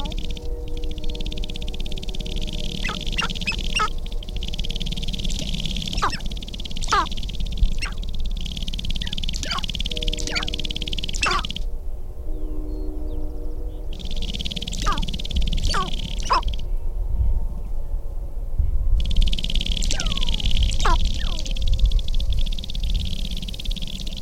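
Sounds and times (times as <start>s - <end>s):
sharp-tailed grouse making sharp downward-sweeping notes: 0.0s - 11.7s, 14.0s - 16.6s, 19.2s - 21.6s, 22.3s - 24.1s
low background rumble: 0.0s - 24.1s.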